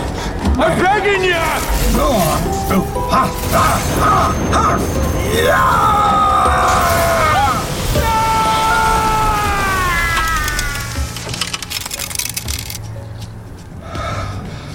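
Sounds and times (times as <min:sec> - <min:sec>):
speech: 0:00.6 - 0:06.8
loud crackling lightning bolts striking: 0:00.7 - 0:12.2
sweeping whining electrical tones: 0:00.9 - 0:12.8.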